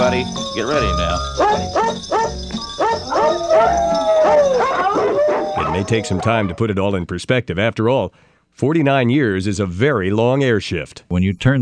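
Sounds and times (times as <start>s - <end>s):
steady musical backing: 0.0s - 6.5s
dogs barking in a pitched rhythm tracing a melody: 0.0s - 6.6s
speech: 0.1s - 4.0s, 5.8s - 11.6s.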